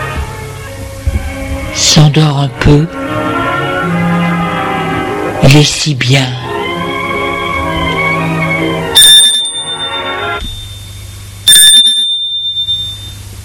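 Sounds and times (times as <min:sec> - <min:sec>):
soft tonal hum: 0:00.0 - 0:05.6, 0:06.3 - 0:13.4
speech: 0:02.0 - 0:03.4, 0:05.5 - 0:06.5
doorbell ringing: 0:09.0 - 0:13.2.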